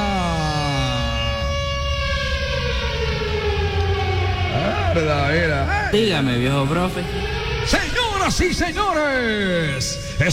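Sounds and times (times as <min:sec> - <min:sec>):
siren sound effect wailing with rising and falling tones: 0:00.0 - 0:10.3
speech: 0:05.0 - 0:10.3.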